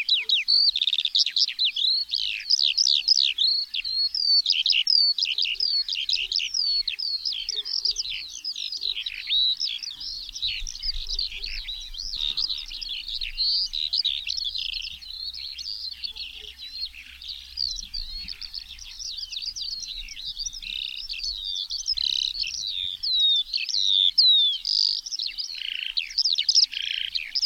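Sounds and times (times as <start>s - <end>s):
Eurasian skylark warbling song: 0.0s - 27.4s.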